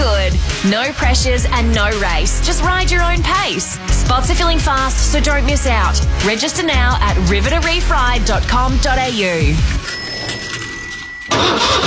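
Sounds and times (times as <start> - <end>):
speech: 0.6 - 9.9
car engine slow to start cranking and starting: 10.5 - 11.8.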